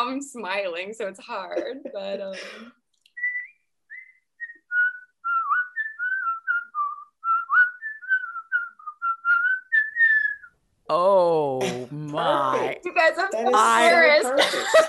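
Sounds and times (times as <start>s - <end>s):
speech: 0.0s - 2.8s, 10.9s - 14.8s
person whistling a lively melody: 3.2s - 10.5s
laughter: 12.3s - 14.8s.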